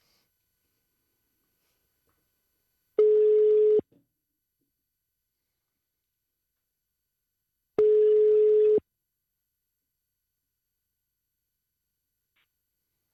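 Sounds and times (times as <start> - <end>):
electronic telephone ringback tones of an outgoing call: 3.0 - 3.8, 7.8 - 8.8.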